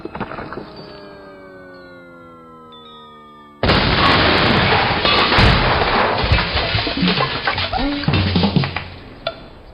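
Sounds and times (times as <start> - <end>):
thin rising whine: 0.0 - 5.0
crackling debris: 3.6 - 8.9.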